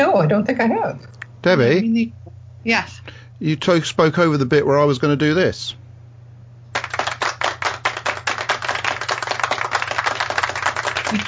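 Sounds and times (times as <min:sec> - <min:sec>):
speech: 0:00.2 - 0:05.8
slow feeble hand clapping: 0:06.7 - 0:11.2.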